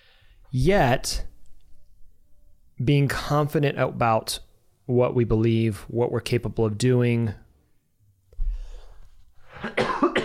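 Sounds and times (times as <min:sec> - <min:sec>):
speech: 0:00.5 - 0:01.3, 0:02.8 - 0:07.4
person coughing: 0:09.5 - 0:10.2.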